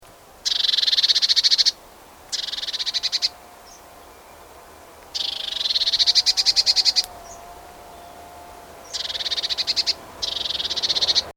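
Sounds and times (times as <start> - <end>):
Eurasian blue tit Cyanistes caeruleus harsh buzzy churring: 0.4 - 3.4, 5.1 - 7.4, 8.8 - 11.3.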